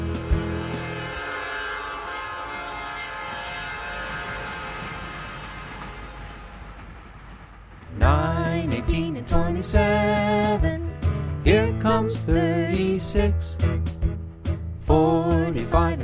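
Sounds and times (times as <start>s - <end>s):
low rumble of a passing train: 0.0s - 16.0s
train horn blowing: 0.2s - 6.6s
speech: 9.6s - 10.1s.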